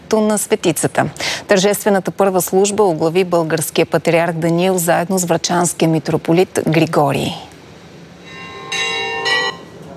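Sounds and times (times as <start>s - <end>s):
speech: 0.1s - 7.5s
church bells pealing at the consecration of a new Orthodox church in Glavatsi, Bulgaria: 8.2s - 9.7s.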